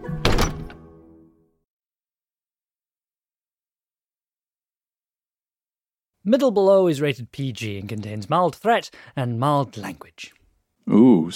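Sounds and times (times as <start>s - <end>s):
door opening and shutting with a solid thunk: 0.0s - 1.0s
speech: 6.2s - 11.3s.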